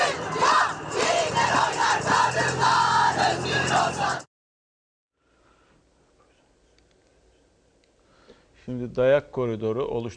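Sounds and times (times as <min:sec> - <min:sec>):
crowd of women protesters chanting slogans while marching in an Istanbul street: 0:00.0 - 0:04.3
speech: 0:08.7 - 0:10.1.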